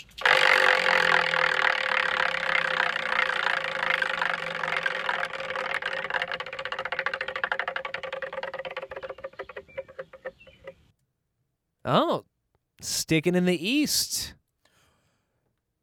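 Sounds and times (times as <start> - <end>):
prize wheel spinning with ratcheting clicks: 0.3 - 9.1
speech: 11.9 - 14.4.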